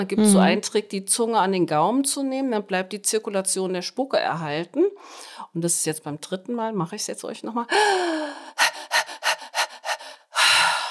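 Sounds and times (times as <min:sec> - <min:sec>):
speech: 0:00.0 - 0:08.4
drawn-out voiced breath: 0:07.7 - 0:10.9
person panting demonstrating breathing for labour contractions: 0:07.7 - 0:10.9.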